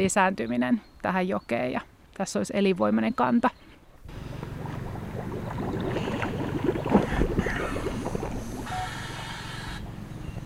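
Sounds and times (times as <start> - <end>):
speech: 0.0 - 3.7
water sloshing and bubbling around a small rubber boat on a river: 3.8 - 10.4.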